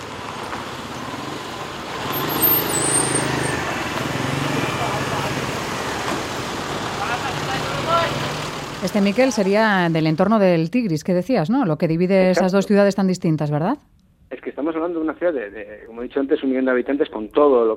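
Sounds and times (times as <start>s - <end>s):
dense city traffic rumbling with engines droning: 0.0s - 13.6s
speech: 8.9s - 17.7s.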